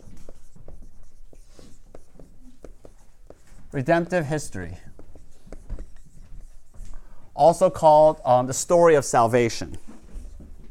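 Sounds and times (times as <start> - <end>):
handwriting strokes as someone writes by hand: 0.0 - 8.0
speech: 3.7 - 4.9, 7.4 - 9.9.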